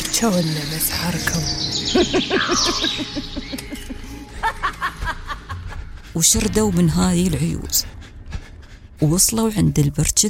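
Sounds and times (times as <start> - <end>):
speech: 0.2 - 3.8, 6.1 - 8.0, 9.0 - 10.2
crows cawing: 2.2 - 3.2.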